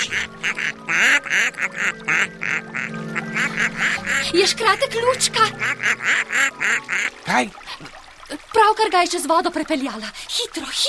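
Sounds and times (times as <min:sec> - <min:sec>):
duck quacking: 0:00.0 - 0:04.3, 0:05.4 - 0:07.2
speech: 0:04.2 - 0:07.9, 0:08.6 - 0:10.8.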